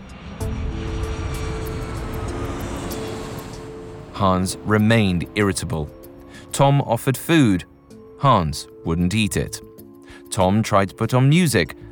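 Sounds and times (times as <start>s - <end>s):
westbound airplane jet engine roaring overhead: 0.0s - 6.6s
speech: 4.2s - 6.0s, 6.6s - 9.7s, 10.3s - 11.8s.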